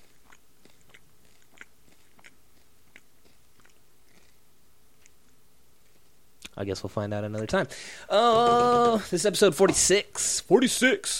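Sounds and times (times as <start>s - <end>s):
person chewing food: 0.0s - 6.5s
speech: 6.6s - 11.1s.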